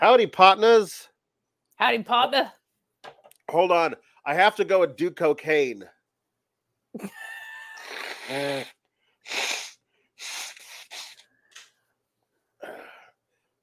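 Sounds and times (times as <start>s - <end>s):
speech: 0.0s - 1.1s, 1.8s - 2.6s, 3.5s - 6.0s, 6.9s - 9.5s
person snorting and blowing nose: 7.8s - 11.3s.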